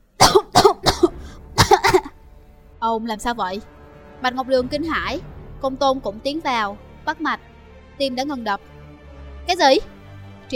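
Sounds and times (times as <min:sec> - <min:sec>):
man coughing dry hacking coughs while coughing up blood: 0:00.2 - 0:02.2
speech: 0:02.9 - 0:08.7, 0:09.5 - 0:09.9.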